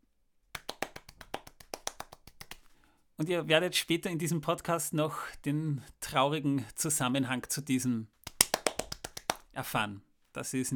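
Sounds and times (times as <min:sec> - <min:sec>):
hand clapping: 0:00.5 - 0:02.8, 0:08.2 - 0:09.6
speech: 0:03.2 - 0:08.2, 0:09.6 - 0:10.7.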